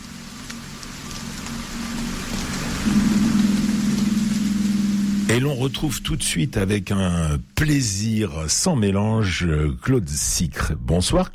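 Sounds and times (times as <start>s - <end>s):
steady rain falling on the sea: 0.0s - 11.3s
deep sustained drone in film score music: 2.8s - 7.4s
speech: 5.3s - 11.3s.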